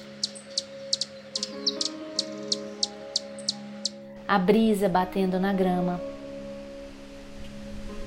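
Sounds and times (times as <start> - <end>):
hummingbirds chirping: 0.0 - 5.1
speech: 4.3 - 6.1.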